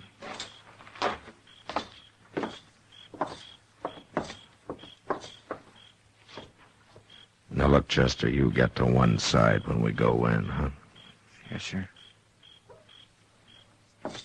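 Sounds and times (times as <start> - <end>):
firm footsteps on a hard floor: 0.3 - 7.0
speech: 7.7 - 10.8, 11.6 - 12.0.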